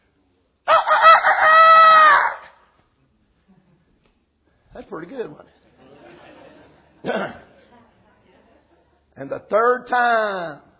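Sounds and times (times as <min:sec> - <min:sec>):
rooster crowing: 0:00.7 - 0:02.6
speech: 0:05.0 - 0:05.6, 0:07.0 - 0:07.4, 0:09.2 - 0:10.7
laughter: 0:05.5 - 0:09.1.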